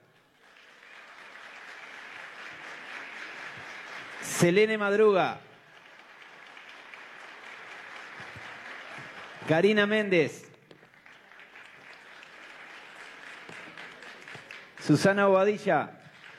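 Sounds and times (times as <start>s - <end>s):
audience applauding: 0.0s - 16.3s
speech: 4.4s - 5.5s, 9.5s - 10.5s, 14.9s - 16.0s.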